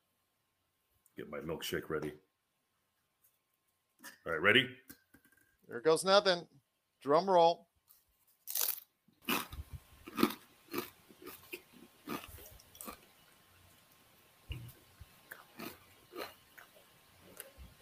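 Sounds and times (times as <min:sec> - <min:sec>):
speech: 0:01.2 - 0:02.3, 0:04.2 - 0:05.0, 0:05.7 - 0:07.7
person crunching a spicy tortilla chip: 0:08.4 - 0:13.0.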